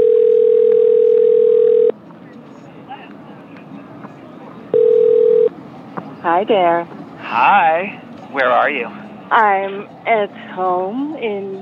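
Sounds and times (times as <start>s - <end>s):
telephone ringback tone over a phone line: 0.0s - 1.9s, 4.7s - 5.5s
speech: 6.3s - 11.5s.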